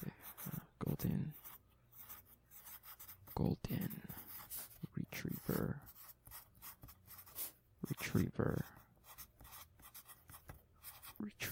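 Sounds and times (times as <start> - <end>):
pen scratching across paper writing a note: 0.0 - 11.4
speech: 1.0 - 1.4, 3.4 - 4.2, 5.2 - 5.9, 8.1 - 8.8.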